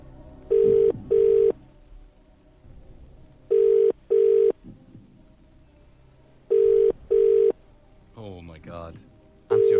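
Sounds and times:
telephone ringback tone double rings: 0.5s - 1.6s, 3.5s - 4.6s, 6.5s - 7.6s.

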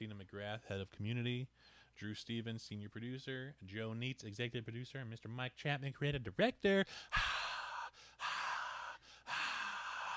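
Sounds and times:
speech: 0.0s - 7.3s
loud breathing into a microphone: 1.5s - 2.0s, 6.9s - 10.1s.

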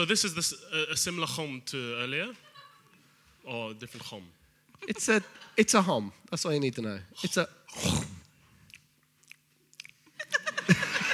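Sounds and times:
speech: 0.0s - 2.5s, 3.4s - 8.1s
laughter: 2.3s - 2.9s, 4.8s - 5.6s, 10.2s - 11.1s
person chewing crunchy food: 8.6s - 10.1s.

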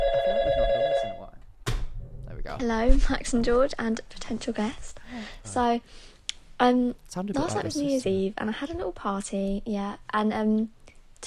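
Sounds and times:
telephone ringing with bright electronic tone: 0.0s - 1.2s
speech: 2.6s - 11.2s.

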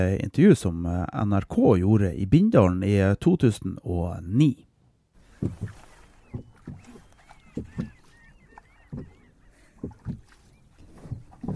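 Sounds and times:
speech: 0.0s - 4.7s, 5.4s - 6.8s
man rowing a boat on a calm fjord in Bindal Helgeland Norway: 5.2s - 11.5s
bird calls chirping: 5.6s - 11.5s.

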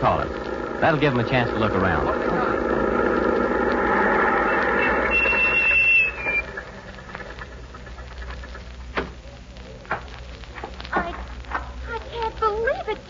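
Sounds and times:
speech: 0.0s - 2.7s
truck engine rumbling: 0.0s - 12.8s
truck brake squeal: 3.0s - 6.7s.

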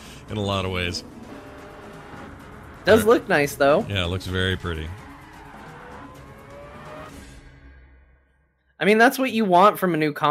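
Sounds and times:
car engine roaring in a driving video game: 0.0s - 7.6s
speech: 0.3s - 1.2s, 2.8s - 5.0s, 8.8s - 10.2s
rising whine: 0.5s - 7.7s.

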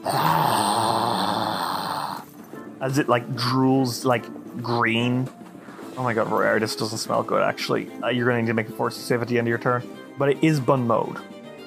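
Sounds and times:
voice imitating a monster's wheezing: 0.0s - 2.3s
speech: 2.8s - 5.4s, 6.0s - 11.3s.

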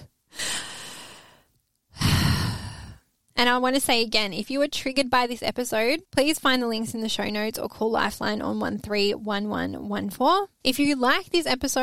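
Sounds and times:
deep breath: 0.3s - 3.1s
speech: 3.4s - 11.8s.

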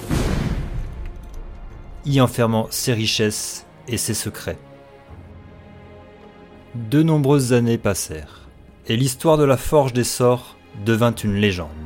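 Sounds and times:
loud explosion: 0.0s - 1.8s
speech: 2.0s - 4.7s, 6.8s - 11.8s.

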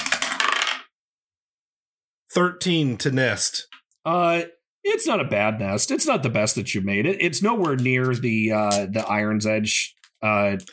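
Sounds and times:
new dice clattering across a hard table: 0.0s - 1.0s
speech: 2.3s - 10.7s.

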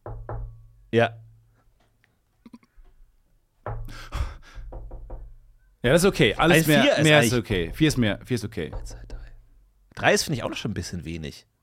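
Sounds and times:
sharp knocks on a hard surface: 0.0s - 0.6s, 3.6s - 4.0s, 4.6s - 5.4s, 7.5s - 9.4s
speech: 0.9s - 1.2s, 5.8s - 9.0s, 10.0s - 11.5s.

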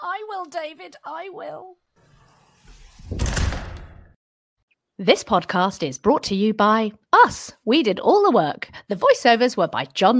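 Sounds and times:
speech: 0.4s - 1.9s, 5.0s - 10.1s
door slamming shut: 2.7s - 4.2s.

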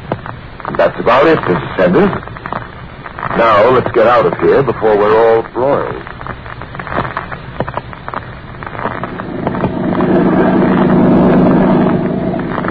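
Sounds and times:
speech: 0.8s - 2.3s, 3.4s - 6.2s
wind buffeting the microphone: 9.0s - 12.6s
motorboat engine droning across a lake: 9.1s - 12.6s.

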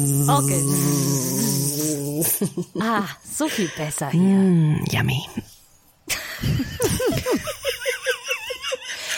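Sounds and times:
speech: 0.0s - 1.4s, 2.2s - 5.5s
voice imitating a buzzing fly: 0.0s - 2.4s
laughter: 6.2s - 9.1s.

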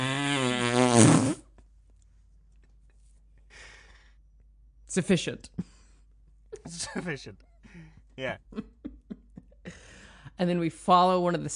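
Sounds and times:
vocal imitation of a very long fart: 0.0s - 1.6s
speech: 1.0s - 1.3s, 5.0s - 5.7s, 6.6s - 9.0s, 10.4s - 11.5s.

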